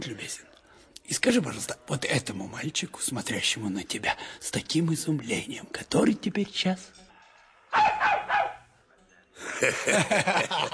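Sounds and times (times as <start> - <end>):
speech: 1.1 - 7.0, 9.4 - 10.7
dog barking in quick yappy barks: 7.7 - 8.7
laughter: 9.4 - 10.7.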